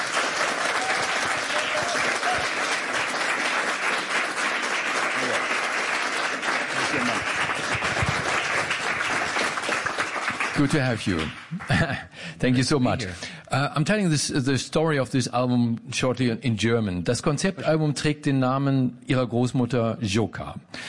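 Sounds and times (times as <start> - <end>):
audience applause at an evening stage event: 0.0 - 11.9
speech: 10.6 - 20.8.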